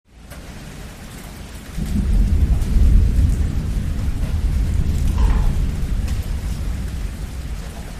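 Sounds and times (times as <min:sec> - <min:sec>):
distant thunder: 0:01.7 - 0:07.9.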